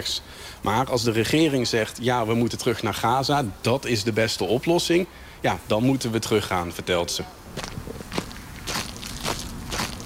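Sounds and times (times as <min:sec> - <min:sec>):
speech: 0:00.0 - 0:07.8
soft crunchy footsteps of people walking away from a museum: 0:07.5 - 0:10.0.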